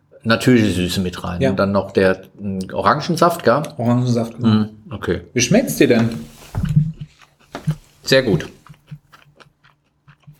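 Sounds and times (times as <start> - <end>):
speech: 0.2 - 6.3, 8.1 - 8.6
crunchy chewing of a sesame-coated snack ball made with peanuts and orange juice: 6.7 - 10.3.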